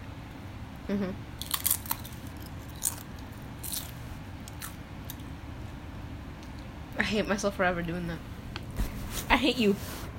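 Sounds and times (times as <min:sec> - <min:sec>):
voice murmuring: 0:00.9 - 0:01.2
speech: 0:00.9 - 0:01.6, 0:07.0 - 0:08.3, 0:09.4 - 0:10.0
person biting and crunching into a carrot: 0:01.4 - 0:05.3.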